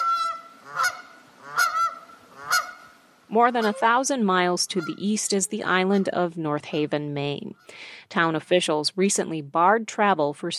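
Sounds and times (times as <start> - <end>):
geese honking by the water on an island: 0.0 - 6.3
speech: 3.3 - 10.5.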